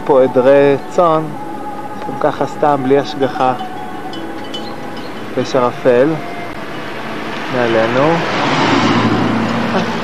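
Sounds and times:
speech: 0.1s - 1.4s, 2.1s - 3.8s, 5.4s - 6.3s, 7.5s - 8.4s, 9.7s - 10.0s
car passing on foggy winding mountain road toward Mount Ida: 6.2s - 10.0s.

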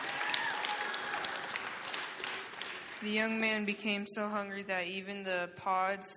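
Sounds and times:
room full of people applauding: 0.0s - 3.4s
speech: 3.0s - 6.1s.

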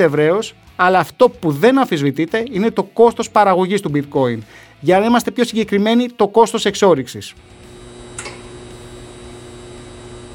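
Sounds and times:
speech: 0.0s - 7.7s
high-voltage power pylon humming at an industrial facility: 7.4s - 10.3s.

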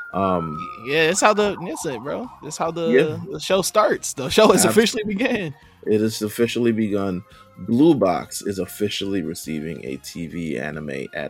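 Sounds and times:
human voice imitating a police siren: 0.1s - 3.3s
speech: 0.1s - 11.2s.

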